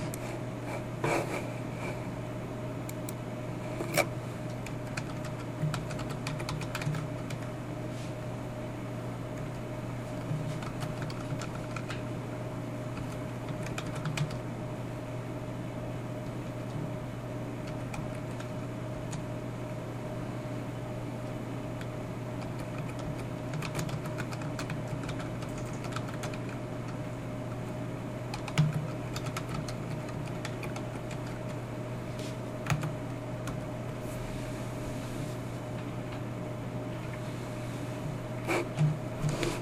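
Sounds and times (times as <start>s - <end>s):
constant low mechanical hum: 0.0s - 39.6s
typing code on a computer keyboard: 4.6s - 7.5s, 10.2s - 12.0s, 13.0s - 14.4s, 17.6s - 18.5s, 21.8s - 27.0s, 28.3s - 31.6s, 32.6s - 33.6s.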